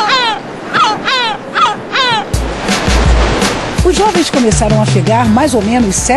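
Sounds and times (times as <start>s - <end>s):
seagulls calling with harsh nasal cries: 0.0s - 5.6s
surf rushing: 0.0s - 6.1s
speech: 4.3s - 6.1s.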